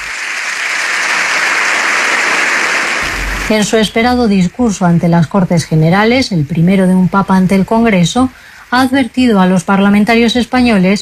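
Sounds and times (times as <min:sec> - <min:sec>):
large crowd of members of parliament applauding in a parliament chamber: 0:00.0 - 0:03.4
speech: 0:03.5 - 0:11.0.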